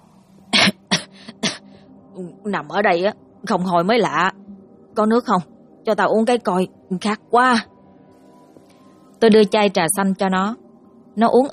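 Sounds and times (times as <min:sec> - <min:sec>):
young man coughing harshly in a weak struggling condition: 0:00.6 - 0:01.6
speech: 0:02.2 - 0:04.4, 0:05.0 - 0:07.7, 0:09.2 - 0:10.6, 0:11.2 - 0:11.5.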